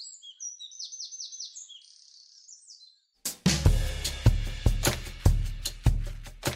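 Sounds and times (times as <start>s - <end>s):
wren singing: 0.0s - 3.2s
loud rhythmic music with a steady beat: 3.2s - 6.5s.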